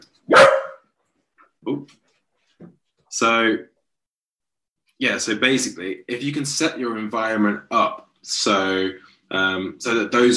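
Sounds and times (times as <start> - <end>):
dog barking: 0.3 - 0.9
speech: 1.6 - 2.0, 2.6 - 3.7, 5.0 - 10.3.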